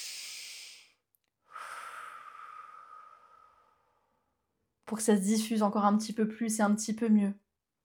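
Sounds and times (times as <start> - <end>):
long audible exhale: 0.0 - 4.3
slow deep breath drawn in with an airy hiss: 0.0 - 4.4
speech: 4.9 - 7.4.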